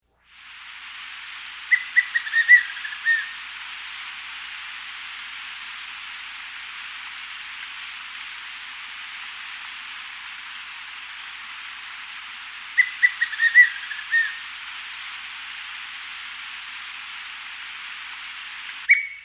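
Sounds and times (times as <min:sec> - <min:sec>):
Gray-Headed Manakin calling in South America: 0:01.5 - 0:05.1, 0:12.4 - 0:16.3.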